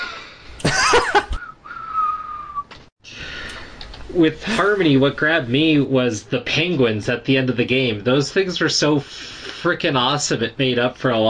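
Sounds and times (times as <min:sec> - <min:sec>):
laughter: 0:00.0 - 0:01.5
person whistling a high note: 0:01.4 - 0:02.7
breathy airy blowing with no clear tone: 0:01.5 - 0:03.9
speech: 0:04.2 - 0:11.2.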